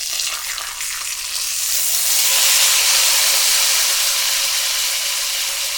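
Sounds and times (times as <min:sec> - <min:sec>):
grilling: 0:00.0 - 0:05.6.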